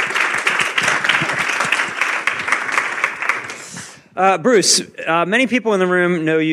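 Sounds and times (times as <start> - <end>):
audience applause: 0.0 - 4.0
speech: 4.2 - 6.5.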